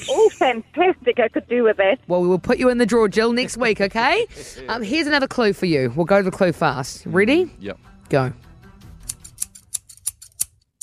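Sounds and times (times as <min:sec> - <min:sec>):
speech: 0:00.1 - 0:08.4
crisp metallic scissor snips: 0:09.0 - 0:10.8.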